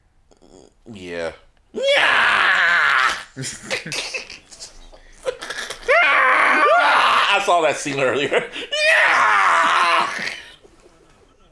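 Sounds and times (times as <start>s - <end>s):
speech: 0.9s - 2.3s, 3.4s - 4.3s, 7.4s - 8.8s
person imitating a character's anguished yell: 1.8s - 3.2s, 5.9s - 7.5s, 8.7s - 10.4s
laughter: 3.1s - 6.1s, 7.4s - 9.2s, 10.0s - 11.4s.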